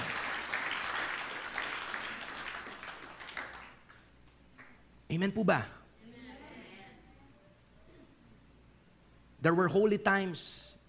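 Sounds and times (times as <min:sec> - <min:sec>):
congregation applauding during a church worship service: 0:00.0 - 0:04.8
speech: 0:05.1 - 0:05.8, 0:09.4 - 0:10.6.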